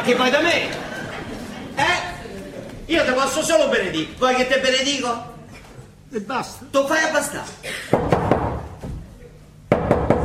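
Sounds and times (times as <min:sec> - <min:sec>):
speech: 0:00.0 - 0:01.0, 0:02.9 - 0:05.3, 0:06.1 - 0:08.1
laughter: 0:00.0 - 0:02.8
knocking on a door: 0:08.0 - 0:08.7, 0:09.7 - 0:10.2.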